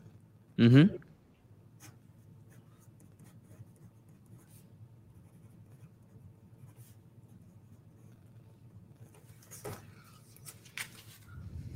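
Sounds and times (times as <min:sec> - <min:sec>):
low steady hum: 0:00.0 - 0:11.7
speech: 0:00.6 - 0:01.0
pen or marker scratching across a surface drawing a funnel diagram: 0:01.8 - 0:04.6, 0:05.2 - 0:08.3.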